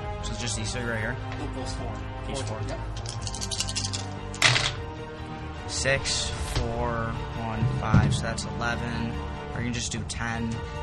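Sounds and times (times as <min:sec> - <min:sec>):
speech: 0:00.4 - 0:03.6, 0:05.7 - 0:10.8
dice clattering on a hard table: 0:03.0 - 0:04.8.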